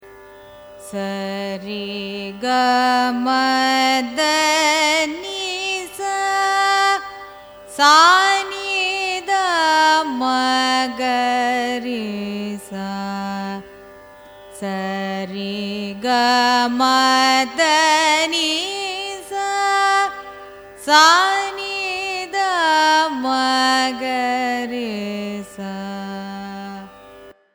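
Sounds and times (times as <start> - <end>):
carnatic raga scale ascending and descending: 0.0 - 27.5.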